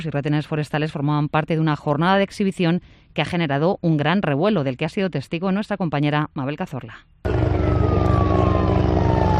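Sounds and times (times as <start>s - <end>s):
speech: 0.0s - 8.1s
helicopter roaring overhead dropping water on a fire: 7.3s - 9.3s
high whine of a helicopter: 7.3s - 9.3s.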